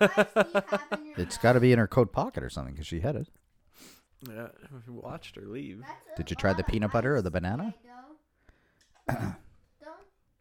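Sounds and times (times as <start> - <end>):
laughter: 0.0 - 1.4
speech: 0.0 - 8.0, 9.1 - 9.4
single harsh loud cough: 9.0 - 9.6.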